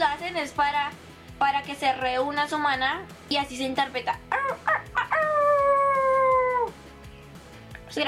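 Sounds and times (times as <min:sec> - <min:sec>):
speech: 0:00.0 - 0:05.3
person imitating a werewolf howl: 0:04.3 - 0:06.7.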